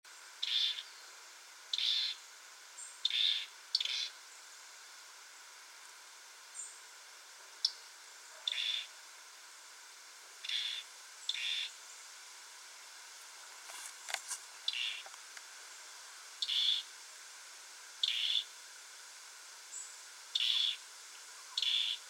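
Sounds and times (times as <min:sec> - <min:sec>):
faint steady hiss: 0:00.0 - 0:22.0
European robin Erithacus rubecula calls: 0:00.4 - 0:01.1, 0:01.7 - 0:02.2, 0:02.8 - 0:04.2, 0:07.5 - 0:08.9, 0:10.4 - 0:11.8, 0:14.6 - 0:15.1, 0:16.4 - 0:16.9, 0:18.0 - 0:18.6, 0:19.7 - 0:22.0.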